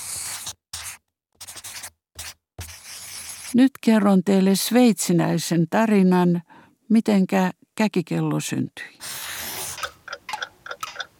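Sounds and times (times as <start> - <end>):
speech: 3.5 - 9.1
several clocks ticking out of step: 9.8 - 11.1.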